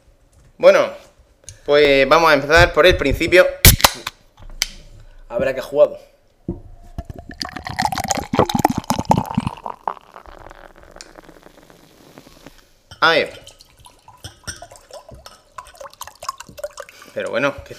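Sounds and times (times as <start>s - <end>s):
speech: 0.6s - 1.0s, 1.7s - 3.6s, 5.3s - 6.6s, 13.0s - 13.4s, 17.2s - 17.7s
water pouring into a glass: 7.0s - 11.7s, 13.1s - 17.3s
person drinking: 7.0s - 12.8s, 13.4s - 17.2s.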